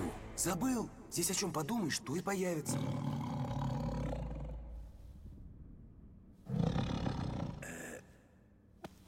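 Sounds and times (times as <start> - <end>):
speech: 0.4 - 3.1
huge cave bear roaring in a cave: 2.6 - 5.0, 6.4 - 8.1.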